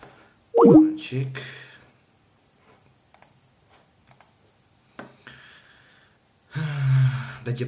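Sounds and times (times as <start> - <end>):
speech: 0.6 - 1.6, 7.5 - 7.6
keys clicking on a computer keyboard: 4.1 - 4.4.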